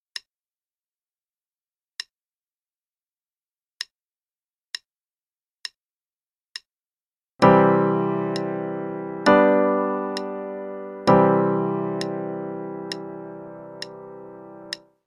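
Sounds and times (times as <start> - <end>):
C major I-V-I chord progression: 7.4 - 14.8.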